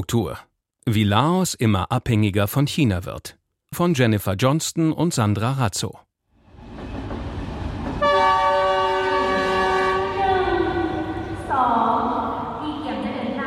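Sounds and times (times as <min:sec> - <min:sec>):
speech: 0:00.0 - 0:06.1
low rumble of a high-speed train arriving at station: 0:06.4 - 0:13.0
high-speed train horn blast: 0:07.9 - 0:11.5.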